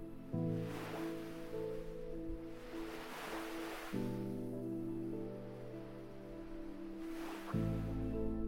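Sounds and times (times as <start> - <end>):
low sustained musical drone: 0.0 - 8.4
calm ocean waves washing onto sand in the early evening: 0.5 - 4.3, 6.9 - 7.7.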